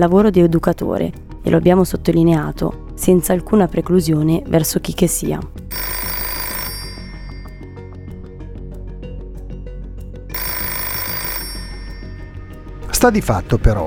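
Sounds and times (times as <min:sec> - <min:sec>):
speech: 0:00.0 - 0:05.9, 0:13.0 - 0:13.8
low musical background: 0:00.0 - 0:13.8
landline telephone ringing: 0:05.7 - 0:07.9, 0:10.3 - 0:12.6.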